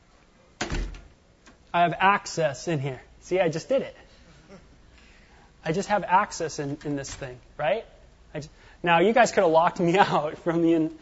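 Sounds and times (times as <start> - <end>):
heavy door being opened: 0.6 - 1.6
speech: 1.7 - 4.0, 5.6 - 11.0.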